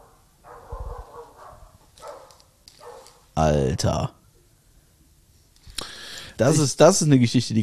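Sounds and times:
dog barking outside: 0:00.0 - 0:03.2
speech: 0:03.4 - 0:04.2, 0:06.4 - 0:07.6.

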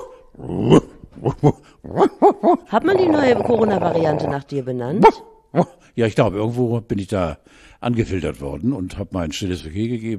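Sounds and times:
man imitating a dog barking with gruff yelps: 0:00.0 - 0:03.0, 0:05.0 - 0:05.8
speech: 0:00.7 - 0:10.1.

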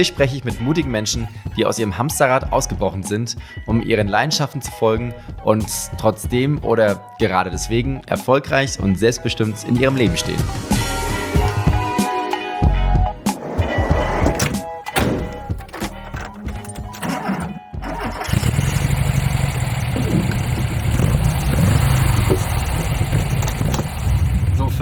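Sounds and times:
speech: 0:00.0 - 0:11.6
VW Bulli van engine humming while driving through Hamburg: 0:10.6 - 0:12.4, 0:13.1 - 0:24.8
irregular thumps and clatter: 0:13.3 - 0:24.4.

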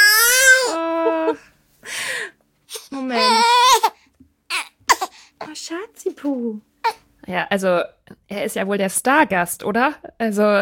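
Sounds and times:
baby crying in loud wavering wails: 0:00.0 - 0:01.4, 0:02.7 - 0:05.2
speech: 0:05.7 - 0:10.5.

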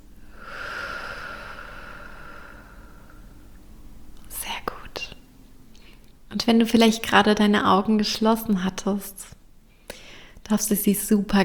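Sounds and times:
slow exhalation during a guided breathing exercise: 0:00.2 - 0:03.4
speech: 0:06.4 - 0:09.3, 0:10.5 - 0:11.4.

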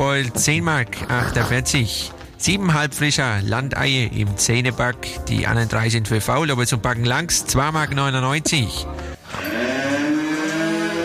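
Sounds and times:
speech: 0:00.2 - 0:09.6
cow mooing: 0:09.3 - 0:11.0.

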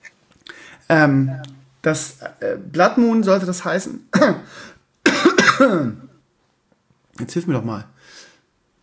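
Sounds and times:
speech: 0:00.9 - 0:04.8, 0:05.6 - 0:06.1, 0:07.2 - 0:08.2
person with a frog in the throat clearing throat: 0:04.1 - 0:06.1
person with a frog in the throat coughing: 0:04.1 - 0:06.1.

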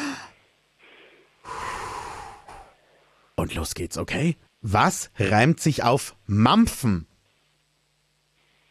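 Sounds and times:
person breathing in and out through the nose and mouth: 0:00.0 - 0:03.1
speech: 0:03.4 - 0:07.1.

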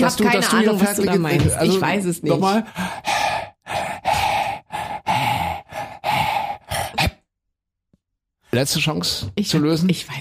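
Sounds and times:
speech: 0:00.0 - 0:03.2, 0:08.6 - 0:10.1
voice panting out a song tune in breathy huffs: 0:02.6 - 0:07.2.

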